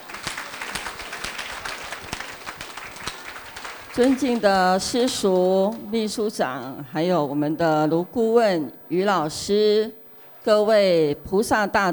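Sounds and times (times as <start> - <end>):
audience applause: 0.0 - 4.9
speech: 4.0 - 11.9.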